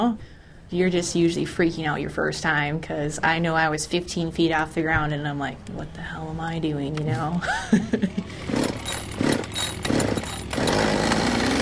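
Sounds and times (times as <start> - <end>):
speech: 0.0 - 8.7
laughter: 7.1 - 8.4
Husqvarna 550 medium-sized ground chainsaw running: 8.2 - 11.6.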